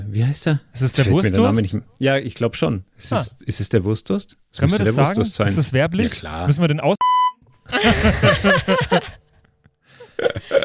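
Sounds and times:
speech: 0.1 - 7.0, 7.7 - 9.2
censorship bleep tone: 7.0 - 7.4
people laughing: 7.7 - 10.6.

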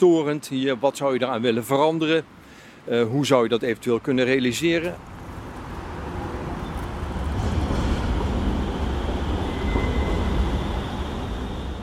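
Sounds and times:
speech: 0.0 - 5.1
busy city traffic with cars and cyclists in a city square: 0.0 - 11.8
tram rolling past in a busy city square: 5.0 - 11.8
faint metallic whine of a tram: 7.4 - 11.8.

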